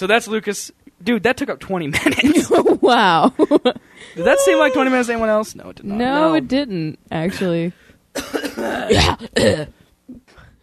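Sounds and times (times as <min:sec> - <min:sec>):
speech: 0:00.0 - 0:09.8
person making harsh throat-clearing coughs: 0:08.2 - 0:09.7.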